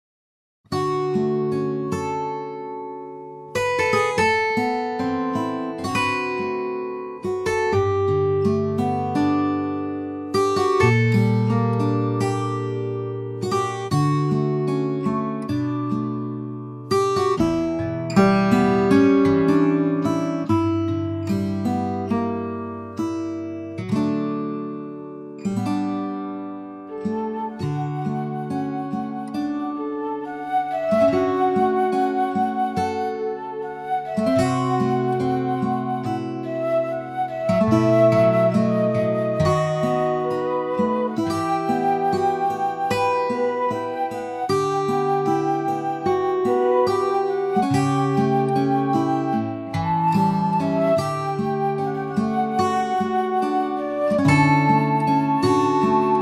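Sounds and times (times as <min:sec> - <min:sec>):
guitar playing: 0:00.7 - 0:56.2
flute D reference note: 0:26.9 - 0:56.2.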